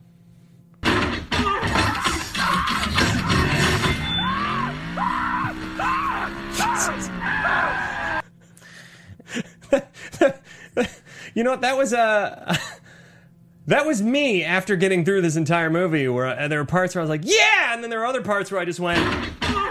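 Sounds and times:
loud crashing and banging: 0.8 - 5.8
man screaming while thrown from a car: 1.6 - 8.2, 17.2 - 17.8
mechanical roar of a transforming robot: 1.7 - 8.2
speech: 10.8 - 12.7, 13.7 - 19.4.

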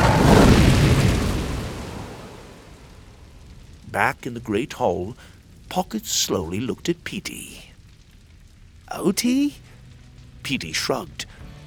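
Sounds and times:
dragon on a tower spire blowing a pillar of fire: 0.0 - 11.4
speech: 4.0 - 7.7, 8.9 - 9.6, 10.4 - 11.3.

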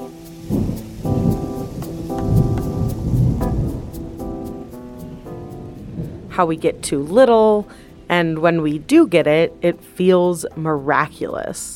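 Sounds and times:
steady rain hissing: 0.0 - 8.1
low thunder rumbling and rolling: 0.0 - 8.9
speech: 6.4 - 11.7.

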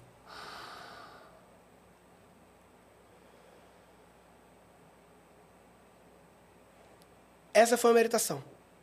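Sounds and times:
deep deliberate conscious breath drawn in: 0.2 - 1.5, 3.0 - 4.2
speech: 7.6 - 8.6.

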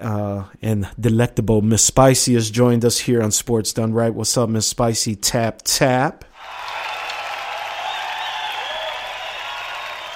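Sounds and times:
speech: 0.0 - 6.6
crowd clapping: 6.4 - 10.1.

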